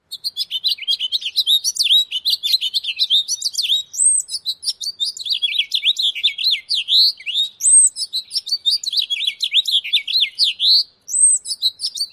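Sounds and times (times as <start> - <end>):
extended bird courtship song: 0.0 - 12.1.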